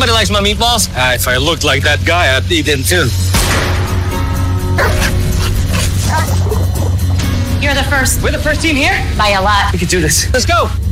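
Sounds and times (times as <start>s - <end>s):
speech: 0.1s - 3.7s, 7.6s - 10.8s
dog barking: 4.8s - 7.0s.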